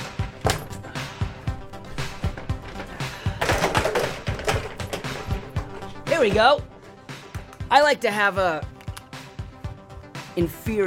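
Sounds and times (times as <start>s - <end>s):
chair being moved with knocks taps and thuds: 0.0s - 6.5s
speech: 6.2s - 6.7s, 7.7s - 8.7s, 10.4s - 10.8s.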